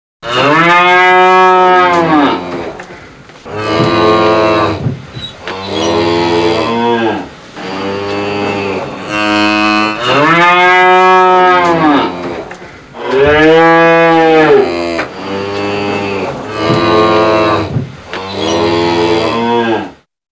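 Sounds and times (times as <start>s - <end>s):
cow: 0.2s - 2.8s, 3.5s - 12.4s, 13.0s - 20.0s.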